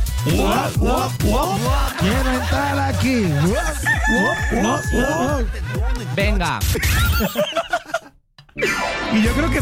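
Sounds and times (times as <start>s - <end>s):
speech: 0.2s - 7.7s, 8.6s - 9.6s
laughter: 0.4s - 8.9s
rooster crowing: 3.6s - 5.4s.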